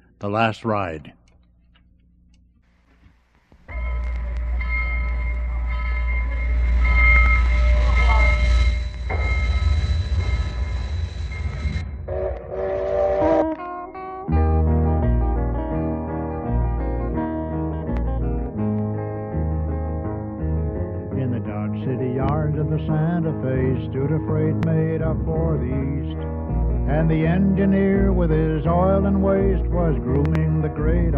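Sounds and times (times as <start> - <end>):
speech: 0.2 - 1.2
music: 1.8 - 31.1
steam locomotive rumbling past: 3.7 - 13.8.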